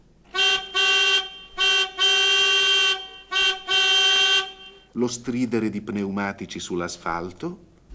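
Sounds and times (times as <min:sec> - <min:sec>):
car horn honking: 0:00.3 - 0:05.0
speech: 0:05.0 - 0:07.7.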